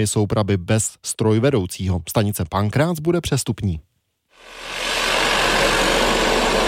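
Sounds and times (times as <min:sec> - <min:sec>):
speech: 0:00.0 - 0:04.8
tunnel drilling rig engine roaring: 0:04.4 - 0:06.6.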